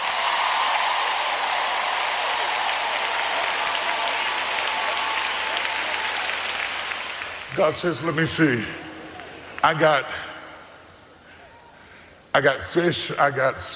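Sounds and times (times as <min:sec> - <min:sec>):
crowd applauding: 0:00.0 - 0:10.2
speech: 0:07.6 - 0:08.9, 0:09.6 - 0:10.3, 0:12.4 - 0:13.7.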